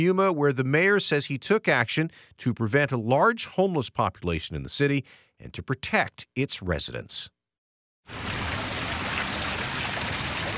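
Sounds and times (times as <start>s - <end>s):
speech: 0.0s - 7.4s, 8.1s - 8.4s
water cascading down a roundabout fountain: 8.1s - 10.5s.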